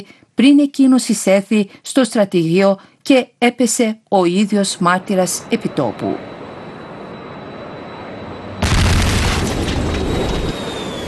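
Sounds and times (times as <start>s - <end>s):
speech: 0.0s - 6.3s
powerful explosion booming: 8.6s - 11.0s.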